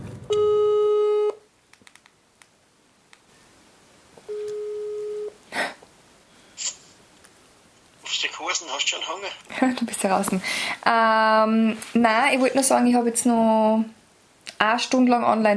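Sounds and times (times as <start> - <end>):
telephone ringback tone: 0.3 - 1.4, 4.3 - 5.4
speech: 8.7 - 14.0, 14.6 - 15.5.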